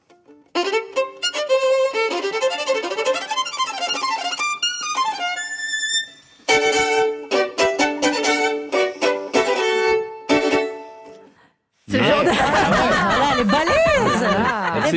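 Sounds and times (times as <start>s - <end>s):
solo violin played spiccato or sautillé with a bouncing bow: 0.0s - 11.2s
laughter: 11.9s - 14.9s.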